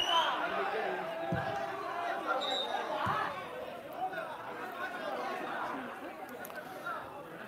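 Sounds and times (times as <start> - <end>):
large indoor crowd protesting a foul call: 0.0 - 7.4.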